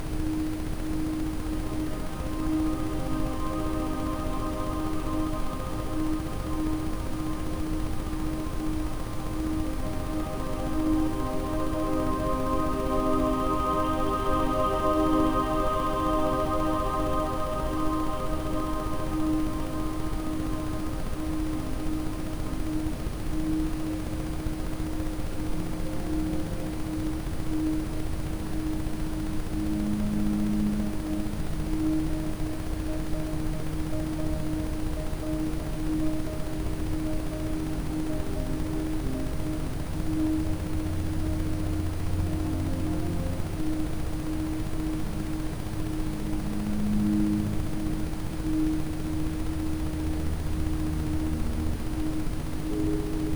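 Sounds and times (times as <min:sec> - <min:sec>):
ambient sound with Rife frequencies: 0:00.2 - 0:53.3.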